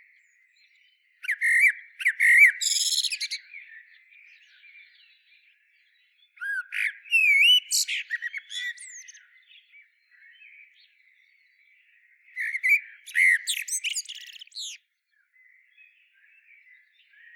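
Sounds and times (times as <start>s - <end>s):
common blackbird Turdus merula singing: 0.0s - 17.3s
soft background birdsong: 0.0s - 17.3s.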